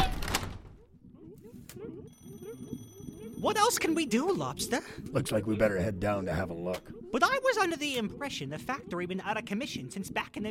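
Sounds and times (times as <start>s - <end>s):
door slamming shut with a heavy bang: 0.0s - 0.7s
speech: 3.4s - 10.5s.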